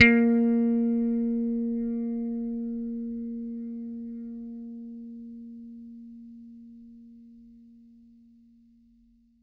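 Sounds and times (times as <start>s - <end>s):
plucked bass note A#3: 0.0s - 5.9s.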